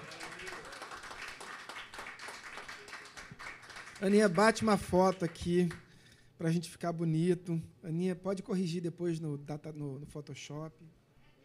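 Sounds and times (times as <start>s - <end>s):
crowd clapping warmly: 0.0s - 5.9s
speech: 4.0s - 5.8s, 6.4s - 11.0s.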